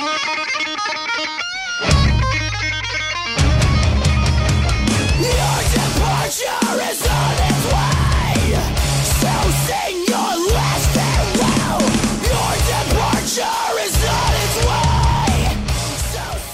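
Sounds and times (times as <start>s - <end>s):
heavy distorted guitars: 0.0s - 16.5s
bass: 1.9s - 6.4s, 7.0s - 9.9s, 10.5s - 16.5s
pounding drums: 3.4s - 16.5s
harsh vocal screams: 4.9s - 16.5s
melodic singing: 4.9s - 16.5s.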